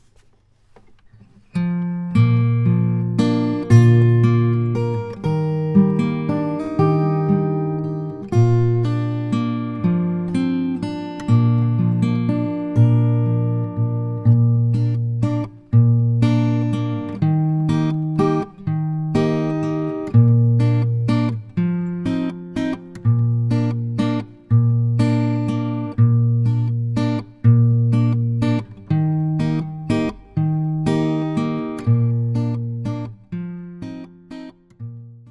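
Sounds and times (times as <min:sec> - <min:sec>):
guitar accompaniment: 0:00.0 - 0:35.2.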